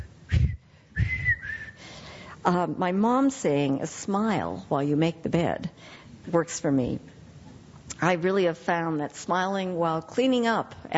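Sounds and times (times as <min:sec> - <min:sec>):
person whistling: 0:00.0 - 0:01.8
speech: 0:02.4 - 0:07.1, 0:08.0 - 0:10.9.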